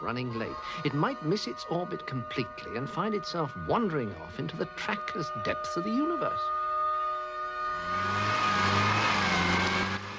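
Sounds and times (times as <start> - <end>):
speech: 0.0 - 6.6
Morris car engine revving while stuck in thick mud: 7.5 - 10.1
front left wheel spinning uselessly in a wet bog: 7.8 - 10.1.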